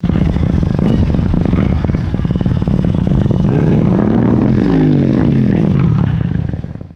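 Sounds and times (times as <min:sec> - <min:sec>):
distant motorcycle engine accelerating: 0:00.0 - 0:06.9.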